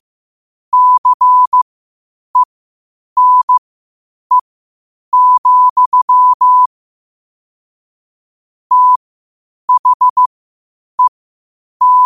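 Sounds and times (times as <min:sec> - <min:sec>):
Morse code tapped out as a pure steady medium-pitch tone: 0:00.8 - 0:01.6, 0:03.2 - 0:03.6, 0:05.2 - 0:06.7, 0:09.7 - 0:10.3, 0:11.8 - 0:12.0.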